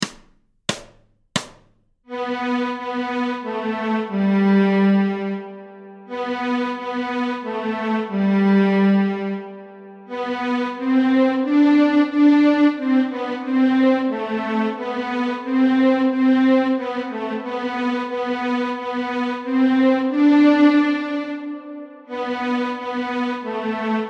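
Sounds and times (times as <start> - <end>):
violin playing on the G string: 2.1 - 24.0.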